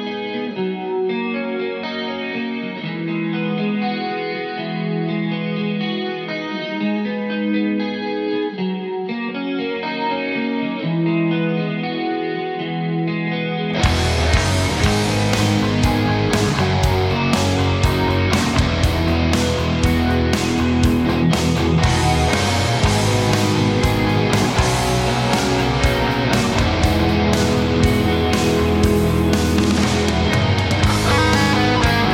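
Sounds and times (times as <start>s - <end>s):
clean effects-laden guitar riff: 0.0s - 32.1s
full band backing: 13.8s - 32.1s.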